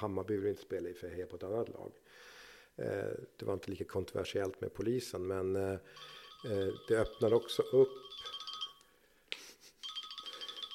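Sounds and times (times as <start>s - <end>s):
speech: 0.0s - 8.3s
mobile phone ringtone with electronic warbling melody: 5.9s - 9.0s, 9.8s - 10.7s.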